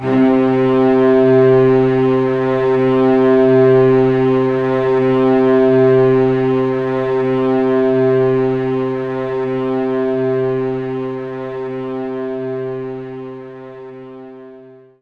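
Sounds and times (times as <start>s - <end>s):
string loop in C2: 0.0s - 14.7s.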